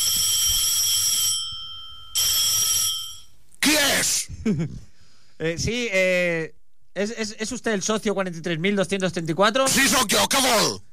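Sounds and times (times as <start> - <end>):
telephone ringing with metallic bell tone: 0.0 - 3.4
speech: 4.4 - 10.9.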